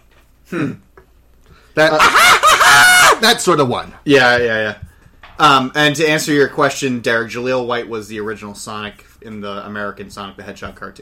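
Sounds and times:
speech: 0:00.5 - 0:00.9, 0:01.8 - 0:04.8, 0:05.4 - 0:10.9
person imitating cackling laugh of a cartoon robot chicken: 0:01.9 - 0:03.2.

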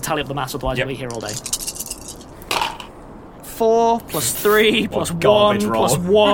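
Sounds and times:
speech: 0:00.1 - 0:01.7, 0:03.6 - 0:06.3
dice tumbling across a hard surface: 0:01.0 - 0:02.9
person speaking loudly and expressively: 0:04.1 - 0:06.3.

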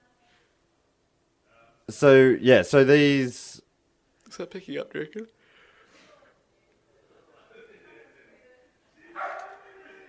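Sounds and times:
speech: 0:01.9 - 0:03.5, 0:04.4 - 0:05.4
dog barking: 0:09.1 - 0:09.8
soft dog yelp: 0:09.2 - 0:09.6.

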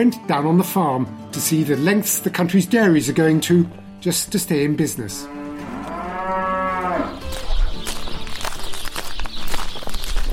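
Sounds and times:
speech: 0:00.0 - 0:05.7
young dairy heifers mooing on a Wisconsin dairy farm: 0:05.2 - 0:07.2.

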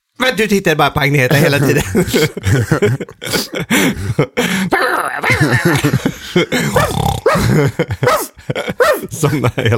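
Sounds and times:
speech: 0:00.3 - 0:09.7
laughter: 0:01.3 - 0:09.7
dog growling and barking: 0:06.7 - 0:09.1.

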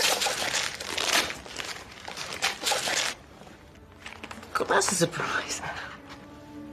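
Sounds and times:
paper ripping as a wrapped gift holding a CD is torn open: 0:00.0 - 0:03.2, 0:03.9 - 0:04.7
speech: 0:04.6 - 0:06.0.

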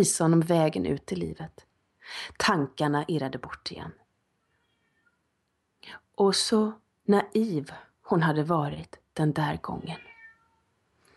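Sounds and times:
speech: 0:00.0 - 0:04.0, 0:05.8 - 0:10.1
cat meowing with a cracking voice: 0:10.0 - 0:10.6.

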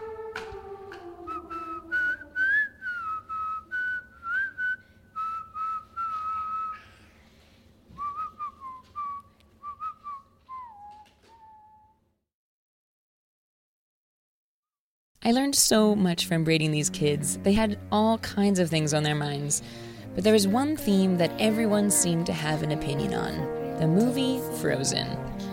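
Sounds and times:
child practicing whistling: 0:01.3 - 0:07.1, 0:07.9 - 0:12.0
child breathing between whistling attempts: 0:04.8 - 0:05.1, 0:06.7 - 0:07.7, 0:19.6 - 0:20.1
speech: 0:15.3 - 0:25.4.

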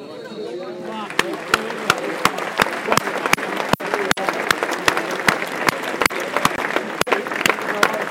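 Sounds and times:
murmur of voices: 0:00.0 - 0:08.0
large stadium football crowd applauding: 0:00.8 - 0:08.0.

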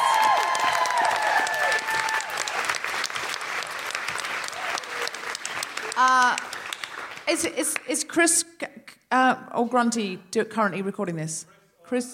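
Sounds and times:
person whooping: 0:00.0 - 0:02.6
large crowd applauding: 0:00.0 - 0:07.9
speech: 0:07.3 - 0:12.1.

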